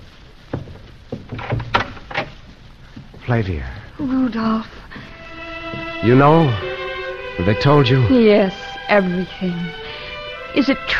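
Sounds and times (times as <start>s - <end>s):
soft wooden knocks: 0.5s - 2.3s
door scraping and thumping as it swings: 0.5s - 3.2s
latch rattling: 0.6s - 2.4s
speech: 3.3s - 5.1s, 6.0s - 6.7s, 7.4s - 9.8s, 10.6s - 10.9s.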